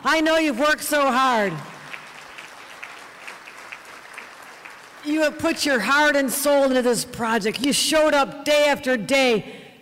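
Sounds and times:
speech: 0.0 - 1.7, 5.0 - 9.6
construction workers applauding: 1.4 - 5.8.

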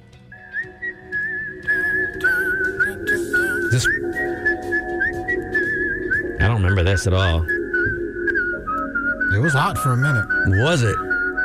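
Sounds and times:
song with steady low beat and backing instruments: 0.0 - 11.4
session whistler's whistled melody: 0.1 - 11.4
speech: 3.7 - 4.2, 6.4 - 7.6, 9.3 - 11.1.

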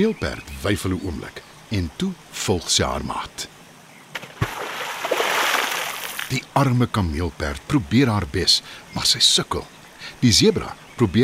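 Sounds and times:
speech: 0.0 - 3.6, 6.3 - 11.2
person jumping into a river: 4.2 - 6.3.

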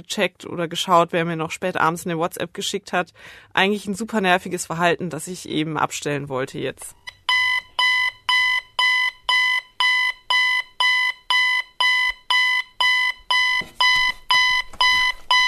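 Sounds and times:
speech: 0.0 - 7.0
shrill electronic alarm clock beeping: 7.0 - 15.4.

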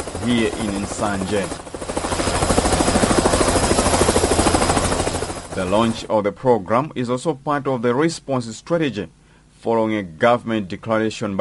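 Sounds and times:
helicopter rotor thudding while ferrying people from flood-prone areas: 0.0 - 6.1
speech: 0.2 - 2.0, 5.6 - 11.3.

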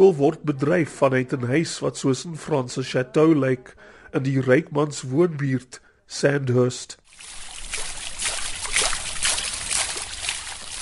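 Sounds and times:
speech: 0.0 - 7.9
water trickling and splashing from bubbling marble fountains: 7.1 - 10.8.

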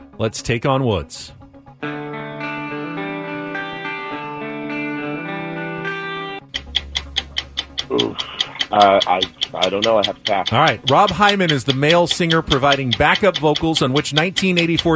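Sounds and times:
speech: 0.2 - 2.0, 7.9 - 14.9
sustained electronic synth chord of game show countdown music: 1.8 - 7.4
brisk regular ticking of game show countdown clock: 6.4 - 14.9.

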